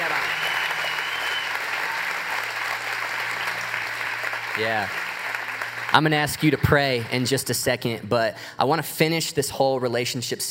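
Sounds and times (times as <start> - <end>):
crowd applauding: 0.0 - 8.1
speech: 4.6 - 5.0, 5.9 - 10.5.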